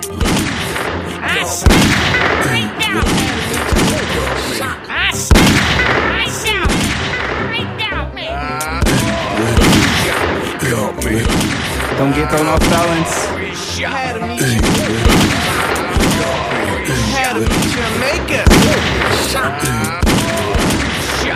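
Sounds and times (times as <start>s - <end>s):
laughter: 0.0s - 6.7s, 7.4s - 21.3s
heavy booming blasts: 0.1s - 4.3s, 5.3s - 7.5s, 8.8s - 13.3s, 14.6s - 16.6s, 17.4s - 19.3s, 20.0s - 21.2s
gunfire in a shooting scene: 0.1s - 4.4s, 5.3s - 7.5s, 8.8s - 13.4s, 14.4s - 21.3s
speech: 1.4s - 3.2s, 12.0s - 15.0s.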